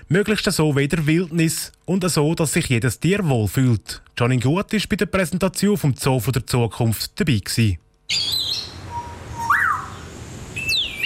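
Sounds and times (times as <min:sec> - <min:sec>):
speech: 0:00.1 - 0:08.7
grey parrot chirping and whistling: 0:08.1 - 0:11.0.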